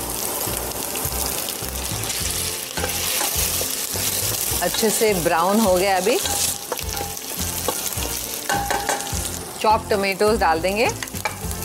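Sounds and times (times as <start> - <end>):
ginger and garlic paste frying in oil with onions sizzling as water hits it: 0.0 - 11.6
speech: 4.6 - 6.5, 9.6 - 11.1.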